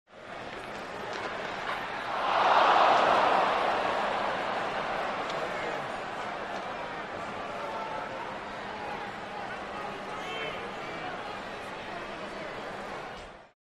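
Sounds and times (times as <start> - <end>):
large sports crowd reacting: 1.8 - 11.5.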